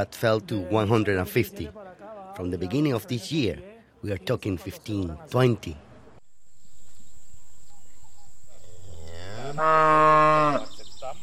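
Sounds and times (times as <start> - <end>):
speech: 0.0 - 1.8, 2.4 - 5.8, 9.6 - 9.9
cow mooing: 8.6 - 10.8.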